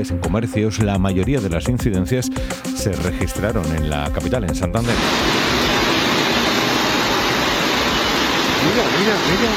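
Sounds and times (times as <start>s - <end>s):
speech: 0.0s - 5.6s, 8.8s - 9.5s
floodwater rushing down a city street: 4.8s - 9.5s.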